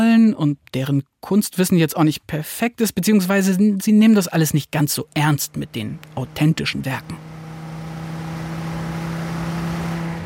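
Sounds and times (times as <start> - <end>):
speech: 0.3 - 7.3
Excalibur American muscle car engine droning at idle or cruising: 4.2 - 10.2.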